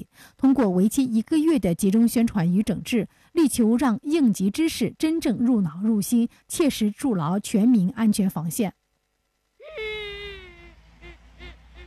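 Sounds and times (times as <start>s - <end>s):
speech: 0.4s - 8.8s
child whimpering and crying: 9.6s - 11.8s.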